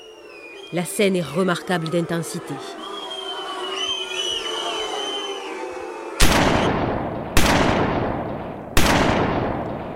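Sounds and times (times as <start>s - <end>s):
crowd noise: 0.0s - 7.4s
speech: 0.7s - 2.8s
booming gunshots fired from a fort: 6.2s - 9.9s.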